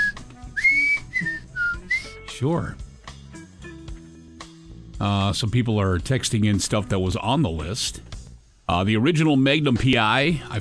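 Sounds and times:
person whistling a jaunty TV sitcom theme tune: 0.0s - 2.3s
speech: 2.4s - 2.8s, 5.0s - 8.1s, 8.7s - 10.5s.

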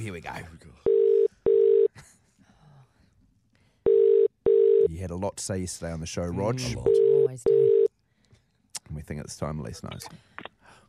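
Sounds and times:
speech: 0.0s - 0.9s, 5.0s - 7.8s, 8.9s - 10.5s
outgoing phone call double-burst ring tones: 0.9s - 1.9s, 3.9s - 4.9s, 6.7s - 7.9s.

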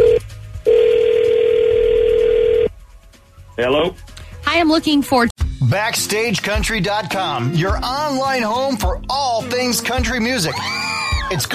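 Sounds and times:
telephone dial tone while dialing a call: 0.0s - 2.7s
speech: 4.6s - 11.5s.

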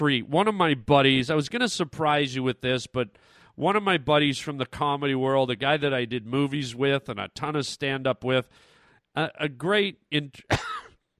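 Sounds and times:
speech: 0.0s - 10.8s
person clearing throat after swallowing a moth: 10.5s - 11.0s
person coughing after swallowing a moth: 10.5s - 11.0s.

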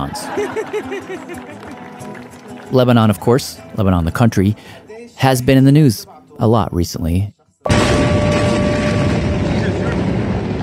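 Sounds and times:
speech: 0.0s - 2.1s, 2.7s - 8.0s
laughter: 0.0s - 2.4s
massive explosion in a city: 7.7s - 10.6s.

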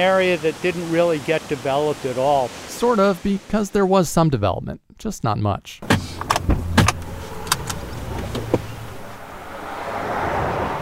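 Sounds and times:
speech: 0.0s - 6.0s
clunks and clicks of people getting into a car in Connecticut: 5.8s - 8.8s
car doors shutting: 5.8s - 9.2s
steady car engine and road hum: 5.8s - 10.8s.

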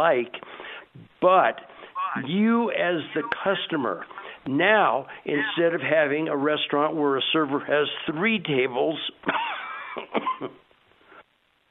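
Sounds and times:
speech: 0.0s - 10.6s
person with a lingering cough coughing: 9.4s - 10.6s.

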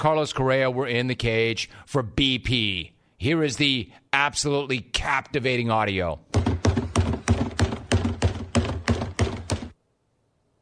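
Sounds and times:
speech: 0.0s - 6.5s
someone banging on a trash can at a baseball stadium: 6.3s - 9.8s.

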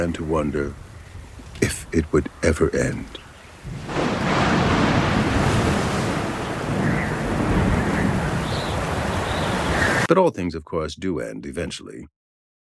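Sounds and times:
speech: 0.0s - 0.8s, 1.6s - 4.0s, 10.1s - 12.2s
storm rain: 0.0s - 10.1s
stormy wind: 0.0s - 11.8s
crashing waves: 3.6s - 10.1s
faint higher whistling gusts: 3.7s - 10.1s.

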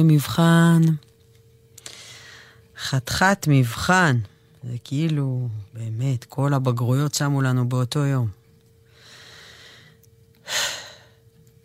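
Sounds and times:
speech: 0.0s - 1.1s, 2.8s - 8.4s
faint low hum: 0.0s - 11.6s
deep inhaled breath: 8.9s - 11.2s.

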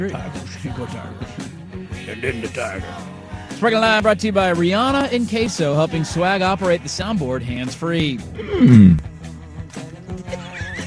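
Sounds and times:
speech: 0.0s - 9.1s
horse snorting: 8.2s - 9.1s
horse whinnying: 8.3s - 9.1s.

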